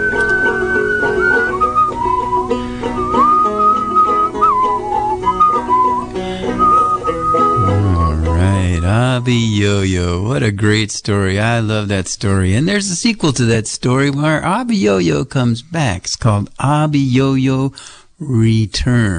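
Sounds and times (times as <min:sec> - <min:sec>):
person whistling a bouncy sing-along melody: 0:00.0 - 0:09.4
steady musical backing: 0:00.0 - 0:10.3
speech: 0:09.3 - 0:19.1.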